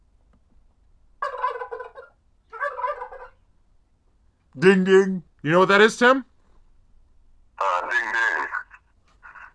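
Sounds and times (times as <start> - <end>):
turkey gobbling: 1.2 - 3.4
speech: 4.6 - 6.3.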